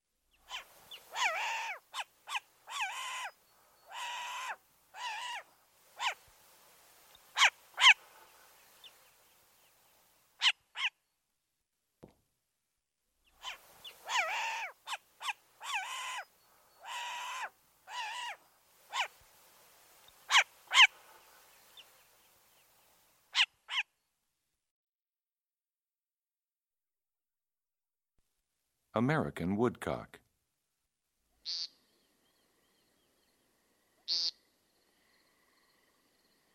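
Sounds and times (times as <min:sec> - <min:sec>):
short-eared owl harsh raspy barking calls: 0:00.4 - 0:06.2, 0:07.3 - 0:09.0, 0:10.4 - 0:11.0, 0:13.3 - 0:19.2, 0:20.3 - 0:21.9, 0:23.3 - 0:23.9, 0:31.4 - 0:31.8, 0:34.0 - 0:34.4
speech: 0:29.0 - 0:30.2.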